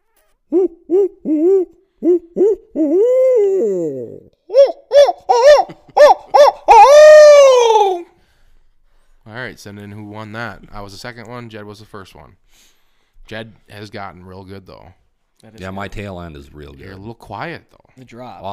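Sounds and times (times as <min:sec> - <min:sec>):
person imitating owl hoots with their voice: 0:00.0 - 0:08.1
speech: 0:00.5 - 0:04.2, 0:09.6 - 0:18.5.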